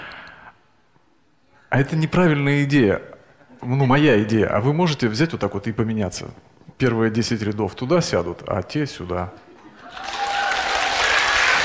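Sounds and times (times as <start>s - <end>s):
speech: 1.7s - 10.1s
audience applauding: 9.8s - 11.6s.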